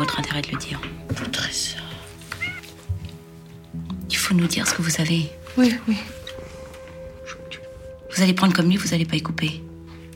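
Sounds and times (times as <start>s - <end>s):
cat giving a short high meow: 0.0s - 0.6s, 2.4s - 2.7s
speech: 0.1s - 1.8s, 4.3s - 6.2s, 8.2s - 9.7s.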